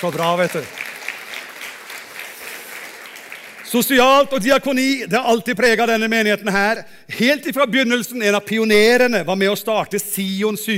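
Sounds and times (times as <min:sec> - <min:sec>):
speech: 0:00.0 - 0:00.8, 0:03.7 - 0:10.7
audience applause: 0:00.0 - 0:03.9.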